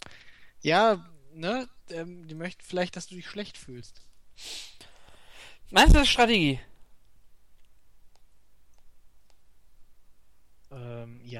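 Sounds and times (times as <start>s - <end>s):
speech: 0.6s - 4.7s, 5.7s - 6.7s
computer mouse clicks: 7.6s - 9.5s.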